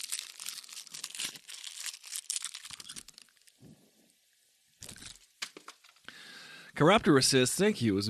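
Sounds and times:
crunching a hard candy cane being eaten: 0:00.0 - 0:03.6, 0:04.8 - 0:05.3
speech: 0:06.8 - 0:08.0.

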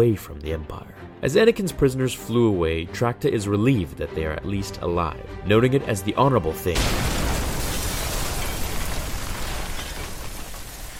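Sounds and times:
speech: 0:00.0 - 0:07.2
massive shuttle explosion: 0:06.8 - 0:10.9.

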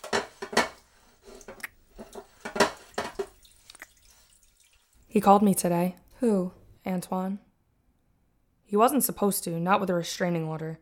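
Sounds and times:
running water washing dishes: 0:01.1 - 0:05.4
dishes and cutlery clinking and clattering: 0:01.4 - 0:03.5
speech: 0:05.2 - 0:07.5, 0:08.7 - 0:10.7.

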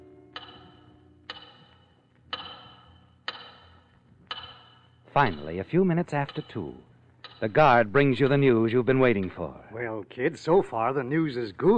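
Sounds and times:
large clock ticking: 0:00.3 - 0:09.5
speech: 0:05.2 - 0:11.7.

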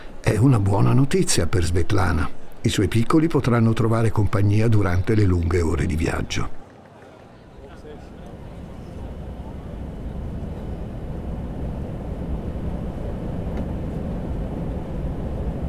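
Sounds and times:
airplane engines roaring during takeoff: 0:00.0 - 0:15.6
speech: 0:00.3 - 0:06.6.

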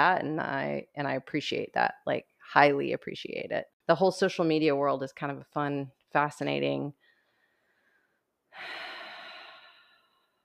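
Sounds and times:
speech: 0:00.0 - 0:07.0, 0:08.6 - 0:08.8
deep breath: 0:07.0 - 0:10.4.

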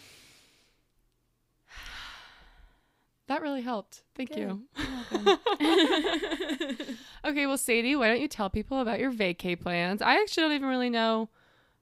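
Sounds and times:
deep breath during a guided breathing exercise: 0:00.0 - 0:00.8, 0:01.7 - 0:03.1, 0:06.8 - 0:07.2, 0:11.3 - 0:11.8
speech: 0:03.4 - 0:11.4
laughter: 0:04.8 - 0:07.0.

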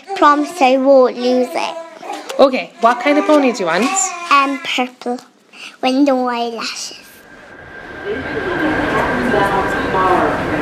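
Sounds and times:
speech: 0:00.2 - 0:01.8, 0:02.4 - 0:07.0, 0:08.0 - 0:08.6, 0:09.3 - 0:10.6
subway train rumbling with a thin sustained whine: 0:07.2 - 0:10.6.

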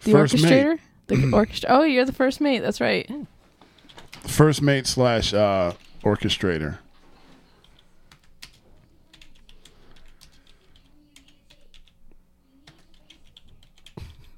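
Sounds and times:
speech: 0:00.0 - 0:03.3, 0:04.2 - 0:06.8
typing on a computer keyboard: 0:07.6 - 0:12.0, 0:12.6 - 0:14.3.

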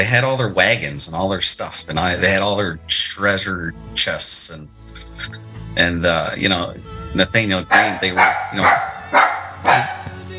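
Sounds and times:
speech: 0:00.0 - 0:09.9
dog barking: 0:07.7 - 0:10.2.

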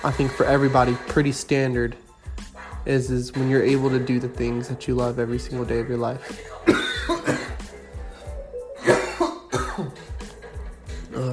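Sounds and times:
speech: 0:00.0 - 0:02.0, 0:02.8 - 0:06.8
person coughing in raspy bursts: 0:06.6 - 0:07.7, 0:08.8 - 0:10.2.

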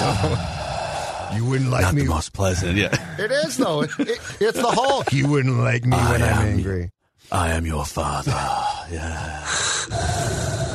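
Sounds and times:
speech: 0:00.2 - 0:00.6, 0:01.3 - 0:10.1
voice imitating respirator breathing into a microphone: 0:00.2 - 0:01.6, 0:09.2 - 0:10.7
laughter: 0:02.8 - 0:05.8.

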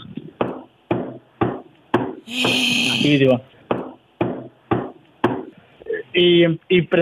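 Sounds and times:
dull knocks imitating footsteps upstairs in an empty two-storey house: 0:00.3 - 0:02.6, 0:03.6 - 0:05.6
speech: 0:02.3 - 0:03.6, 0:06.2 - 0:06.9.

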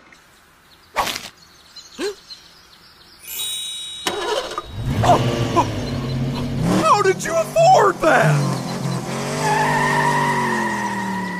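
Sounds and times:
low car engine rumble: 0:04.1 - 0:09.1
car tires screeching as the vehicle skids to a halt: 0:04.1 - 0:11.3
speech: 0:07.2 - 0:08.6.

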